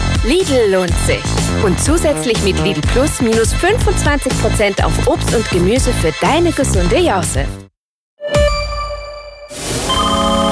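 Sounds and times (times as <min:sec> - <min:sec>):
speech: 0:00.2 - 0:07.6
telephone ringtone: 0:08.2 - 0:10.5.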